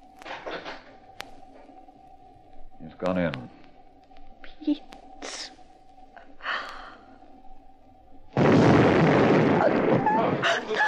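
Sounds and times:
low quiet hum: 0.0 - 10.8
speech: 3.0 - 3.6, 4.7 - 5.0
loud explosion rolling into a sustained roaring rumble: 8.4 - 10.8.

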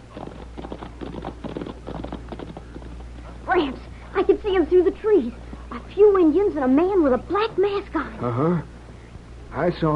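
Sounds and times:
horse hooves clip-clopping: 0.0 - 3.4
low constant hum: 0.0 - 9.9
speech: 3.6 - 8.7, 9.5 - 9.9.

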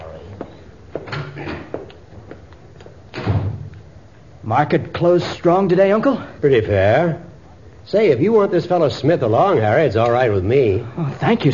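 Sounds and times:
door closing with a solid thud: 3.2 - 3.7
speech: 4.5 - 7.3, 7.9 - 11.5.

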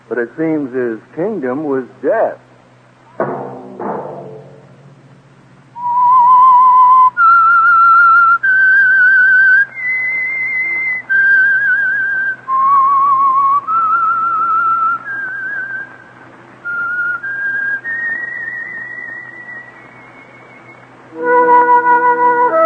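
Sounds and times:
speech: 0.1 - 2.5
soft thuds: 3.1 - 5.8
lone whistler whistling a slow haunting melody: 5.8 - 15.9, 16.6 - 22.6
louder musical chord: 21.1 - 22.6.

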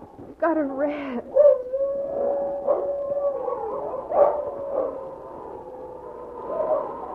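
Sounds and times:
speech: 0.5 - 1.5
two wolves howling: 1.3 - 7.1.

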